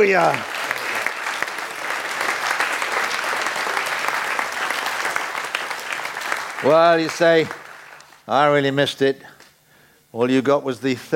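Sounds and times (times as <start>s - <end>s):
speech: 0.0s - 0.5s, 6.6s - 7.6s, 8.3s - 9.3s, 10.1s - 11.1s
audience clapping: 0.0s - 8.5s.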